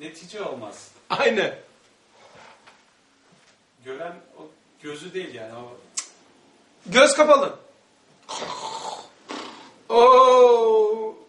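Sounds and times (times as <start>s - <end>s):
speech: 0.0s - 1.7s, 3.8s - 5.9s, 6.8s - 7.6s, 8.3s - 8.8s, 9.9s - 11.0s
person imitating snoring with a throaty drone: 8.3s - 9.9s.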